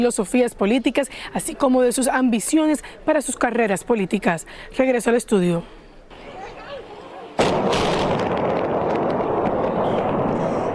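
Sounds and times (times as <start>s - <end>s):
speech: 0.0s - 5.8s
crackling debris: 7.4s - 10.7s
explosives demolishing a highway bridge: 7.4s - 10.7s
sustained roaring rumble: 7.4s - 10.7s.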